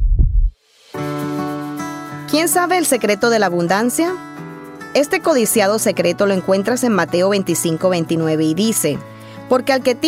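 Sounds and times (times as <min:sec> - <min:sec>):
deep booming heartbeat thump: 0:00.0 - 0:00.6
speech: 0:02.3 - 0:04.3, 0:05.0 - 0:10.0.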